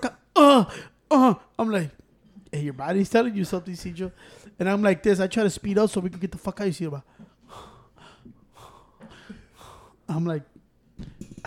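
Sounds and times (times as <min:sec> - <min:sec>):
speech: 0:00.5 - 0:07.7, 0:10.1 - 0:10.5
heavy labored breathing with rasping inhales and exhales: 0:07.1 - 0:10.1.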